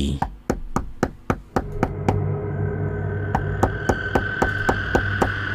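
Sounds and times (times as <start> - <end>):
rapid knocking on a door: 0.2 - 2.2, 3.4 - 5.4.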